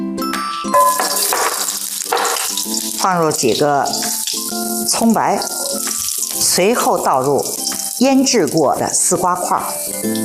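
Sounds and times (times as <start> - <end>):
clear ringing metallic tones from the cookware: 0.4 - 2.6
ginger slices sizzling in hot cooking oil over low heat: 0.6 - 10.2
speech: 3.0 - 4.1, 4.9 - 5.5, 6.6 - 10.2.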